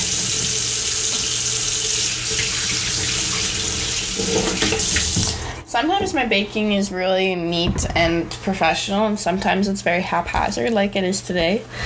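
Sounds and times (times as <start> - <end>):
running tap water splashing over greasy hands being washed: 0.0 - 5.7
speech: 4.2 - 5.0, 5.8 - 11.8.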